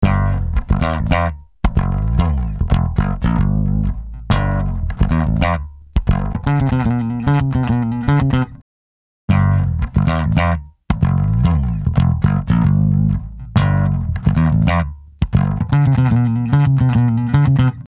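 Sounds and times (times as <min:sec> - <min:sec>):
150Hz bass tone: 0:00.0 - 0:08.6, 0:09.3 - 0:17.8.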